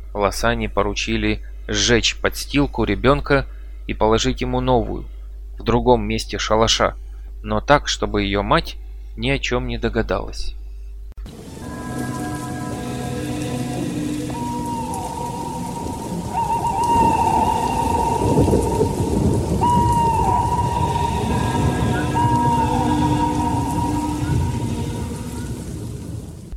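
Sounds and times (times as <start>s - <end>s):
speech: 0.2s - 10.6s
heavy brief evening downpour of rain: 11.3s - 26.5s
low thunder rumbling: 11.3s - 26.5s
sustained tonal drones: 11.3s - 26.5s.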